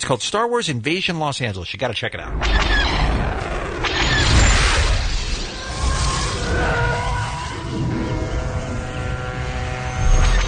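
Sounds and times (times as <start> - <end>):
speech: 0.0 - 3.5
TIE fighter flying in attack run with harsh roaring whine: 2.3 - 10.4.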